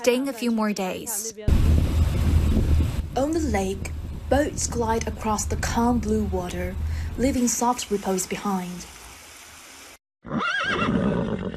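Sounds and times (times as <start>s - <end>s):
speech: 0.0s - 2.2s, 3.2s - 8.9s
horse neighing on a lakeshore: 10.2s - 11.5s.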